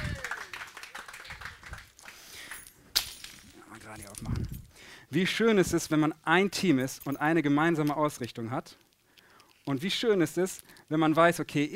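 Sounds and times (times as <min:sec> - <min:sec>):
audience applause: 0:00.0 - 0:02.3
speech: 0:05.1 - 0:08.8, 0:09.7 - 0:11.7.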